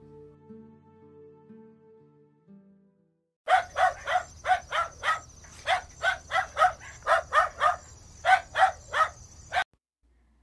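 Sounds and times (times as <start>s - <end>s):
insect-like chirping: 3.5s - 9.6s
dog barking: 3.5s - 9.7s.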